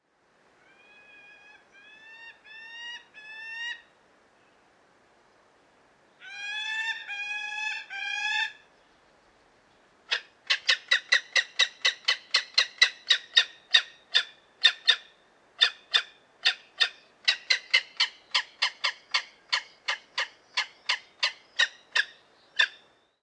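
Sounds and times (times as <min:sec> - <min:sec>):
gyrfalcon calling: 0:00.6 - 0:03.9, 0:06.2 - 0:08.6, 0:10.1 - 0:22.9.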